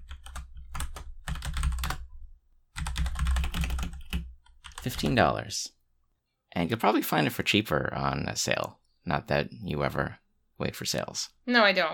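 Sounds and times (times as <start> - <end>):
typing on a clicky mechanical computer keyboard: 0.0 - 2.0, 2.8 - 5.1
speech: 4.8 - 5.8, 6.6 - 11.9.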